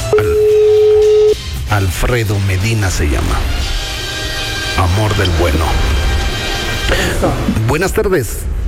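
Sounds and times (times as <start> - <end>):
telephone ringback tone while waiting for an answer: 0.1 - 1.4
speech: 2.0 - 3.8, 4.8 - 6.1, 6.9 - 8.6.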